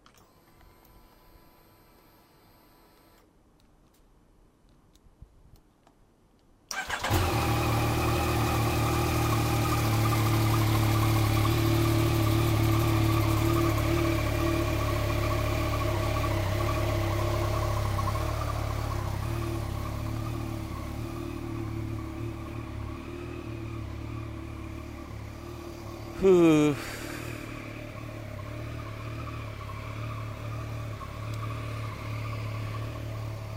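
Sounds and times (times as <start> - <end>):
motorcycle engine starting and idling with a deep rumble: 6.7 - 33.5
speech: 26.2 - 26.8.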